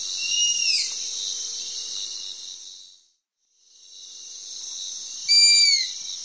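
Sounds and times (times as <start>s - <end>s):
striped owl whistles in the eastern lowlands of South America: 0.2s - 1.1s, 5.3s - 6.0s.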